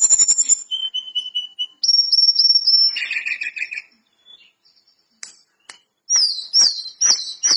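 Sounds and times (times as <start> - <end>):
lesser shortwing giving high chirps and sharp ticks: 0.0 - 0.8, 1.8 - 7.5
lesser shortwing singing loud high whistled notes slurring downward: 0.0 - 4.6, 5.7 - 7.5.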